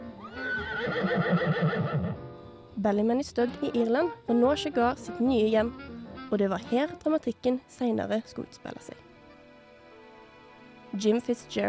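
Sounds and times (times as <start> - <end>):
retired racehorse whinnying at a breeding farm: 0.2 - 2.2
speech: 0.7 - 9.1, 10.9 - 11.6.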